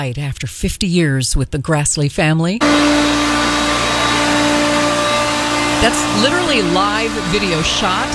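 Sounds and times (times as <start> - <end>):
speech: 0.0 - 3.4, 5.8 - 8.1
household vacuum cleaner running over carpet at home: 2.6 - 8.1.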